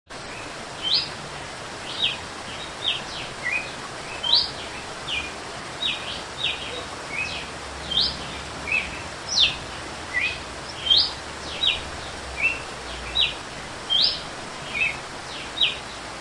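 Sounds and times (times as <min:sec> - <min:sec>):
steady noise: 0:00.1 - 0:16.1
female red-cowled cardinal whistled fluted song: 0:00.8 - 0:01.1, 0:02.8 - 0:11.8, 0:12.4 - 0:15.8.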